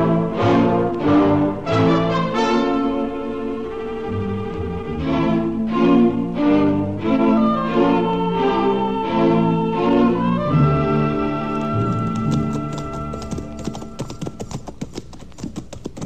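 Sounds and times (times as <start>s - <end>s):
sustained musical background: 0.0s - 16.0s
horses' hooves clip-clopping as riders approach a camp: 11.5s - 16.0s.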